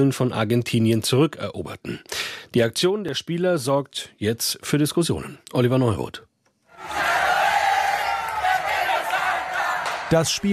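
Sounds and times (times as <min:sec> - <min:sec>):
speech: 0:00.0 - 0:07.0, 0:10.1 - 0:10.5
large stadium crowd of football fans roaring and cheering: 0:06.7 - 0:10.5.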